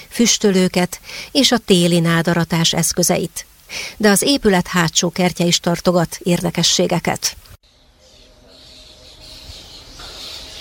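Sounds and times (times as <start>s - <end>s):
speech: 0.2s - 7.5s
chorus of many birds chirping and twittering in plane trees on a sunny day: 7.7s - 10.6s.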